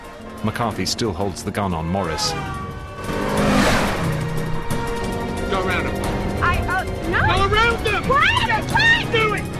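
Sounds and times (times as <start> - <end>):
tire noise: 0.0 - 8.9
speech: 0.4 - 2.6
car engine roaring while driving wildly through traffic: 2.2 - 6.4.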